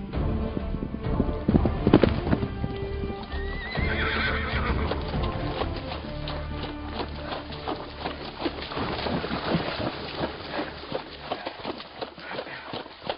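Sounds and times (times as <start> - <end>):
roan gelding hoofbeats galloping: 0.2 - 13.1
horse whinnying: 3.2 - 5.3.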